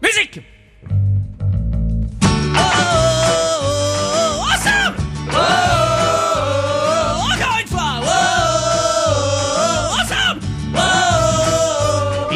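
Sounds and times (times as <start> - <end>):
speech: 0.2 - 1.0
full band accompaniment with steady driving beat: 1.5 - 12.3
person singing a parody news report: 2.6 - 7.4, 8.0 - 12.3.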